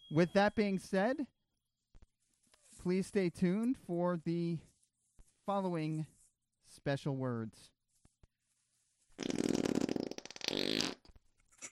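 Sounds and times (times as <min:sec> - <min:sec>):
speech: 0:00.1 - 0:01.4, 0:02.8 - 0:04.7, 0:05.5 - 0:06.1, 0:06.7 - 0:07.8, 0:09.2 - 0:09.4
fart: 0:09.2 - 0:11.6.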